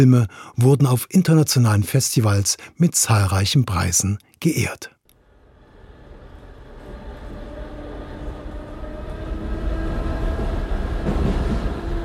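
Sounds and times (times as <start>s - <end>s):
speech: 0.0s - 4.9s
S-Bahn commuter train riding along the rails: 5.2s - 12.0s
S-Bahn commuter train rattle: 6.3s - 12.0s.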